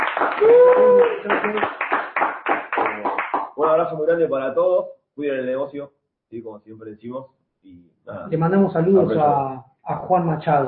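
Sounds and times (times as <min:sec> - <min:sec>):
brisk steady audience hand clapping: 0:00.0 - 0:03.8
speech: 0:00.4 - 0:01.8, 0:03.6 - 0:10.6.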